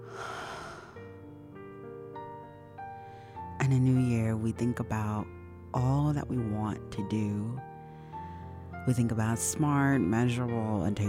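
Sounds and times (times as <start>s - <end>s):
deep breath drawn during a guided meditation: 0.0s - 1.1s, 3.0s - 3.6s, 7.8s - 8.7s
speech: 3.7s - 7.7s, 8.8s - 11.0s.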